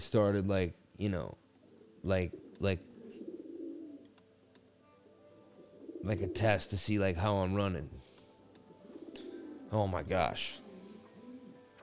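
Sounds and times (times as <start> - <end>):
speech: 0.0 - 1.4, 2.0 - 2.9, 6.0 - 8.0, 9.7 - 10.6
bird cooing indoors on a computer: 1.6 - 4.2, 5.3 - 6.7, 8.6 - 11.8.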